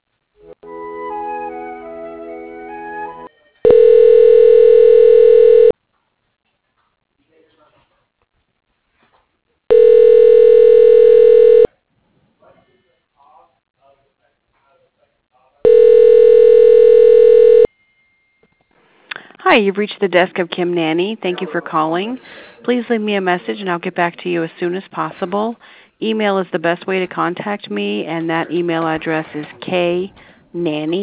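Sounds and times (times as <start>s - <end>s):
telephone ringback tone while a call is transferred: 3.6s - 5.7s, 9.7s - 11.7s, 15.7s - 17.7s
speech: 19.6s - 31.0s.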